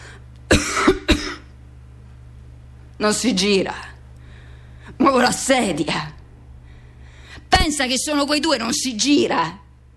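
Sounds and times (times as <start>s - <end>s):
person coughing: 0.5s - 1.5s
speech: 3.0s - 3.9s, 5.0s - 6.2s, 7.6s - 9.9s.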